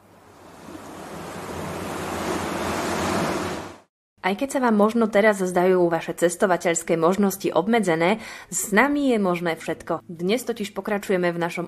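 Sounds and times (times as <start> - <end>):
sea waves murmuring: 0.0 - 3.9
speech: 4.2 - 11.6.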